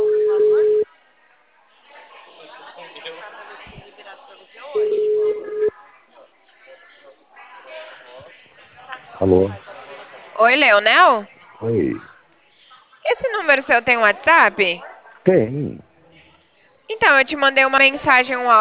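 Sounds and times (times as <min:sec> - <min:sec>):
telephone ringback tone as a call connects: 0:00.0 - 0:00.8, 0:04.8 - 0:05.7
chatter: 0:00.0 - 0:18.5
speech: 0:09.3 - 0:09.6, 0:10.4 - 0:12.1, 0:13.5 - 0:15.9, 0:16.9 - 0:18.5.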